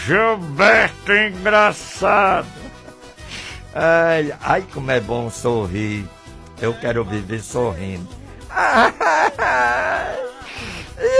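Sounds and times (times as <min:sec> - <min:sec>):
speech: 0:00.0 - 0:02.8, 0:03.7 - 0:10.2
laughter: 0:02.1 - 0:03.1, 0:08.5 - 0:11.1
exaggerated comedic crying wail from a person: 0:08.5 - 0:11.1.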